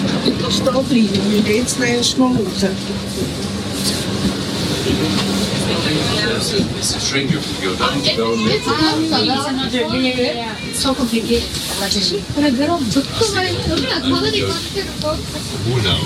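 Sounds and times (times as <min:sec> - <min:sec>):
train rumbling on rails: 0:00.0 - 0:16.0
speech: 0:00.5 - 0:03.6, 0:04.9 - 0:16.0.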